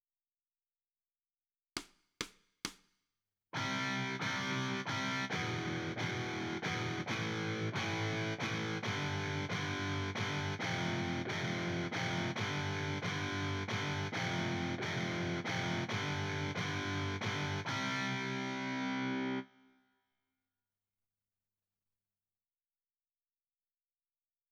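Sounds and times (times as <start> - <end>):
guitar: 3.6 - 19.7.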